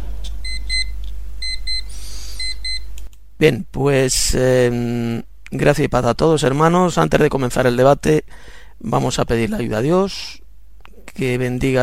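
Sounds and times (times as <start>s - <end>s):
debate timer alarm beeping: 0.4s - 2.9s
speech: 3.4s - 10.4s, 11.1s - 11.8s.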